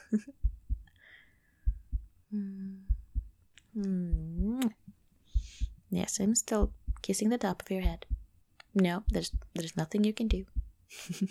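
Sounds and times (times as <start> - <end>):
speech: 0.1 - 0.5, 2.3 - 2.9, 3.8 - 4.8, 5.9 - 8.2, 8.8 - 11.2
heartbeat: 0.3 - 0.9, 1.6 - 3.4, 4.0 - 4.6, 5.3 - 5.9, 6.5 - 8.4, 9.0 - 10.8
person humming and murmuring: 2.3 - 3.2, 3.8 - 4.8.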